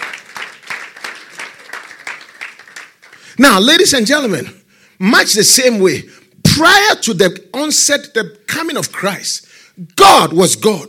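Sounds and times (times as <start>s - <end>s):
audience clapping: 0.0s - 3.9s
speech: 3.4s - 10.8s.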